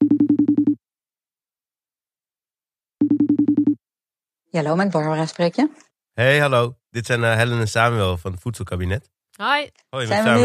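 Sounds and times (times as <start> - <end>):
ringback tone of an outgoing phone call: 3.0 - 3.8
speech: 4.5 - 10.4.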